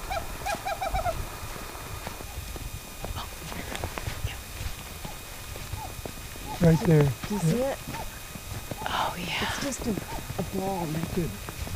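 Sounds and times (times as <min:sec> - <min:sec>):
recording of a western screech owl tooting, played by birders: 0:00.0 - 0:01.4, 0:05.0 - 0:08.9, 0:10.0 - 0:10.4
steady outdoor hiss: 0:00.0 - 0:11.7
speech: 0:06.6 - 0:08.1, 0:09.6 - 0:11.6.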